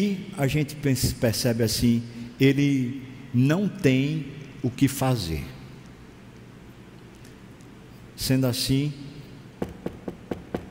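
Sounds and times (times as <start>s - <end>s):
speech: 0.0s - 5.6s, 8.2s - 9.0s
knocking on a door: 9.6s - 10.6s.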